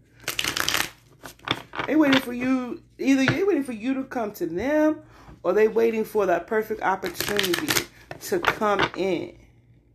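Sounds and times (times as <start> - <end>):
deck of cards being shuffled: 0.2 - 2.3, 7.0 - 8.7
speech: 1.9 - 9.4.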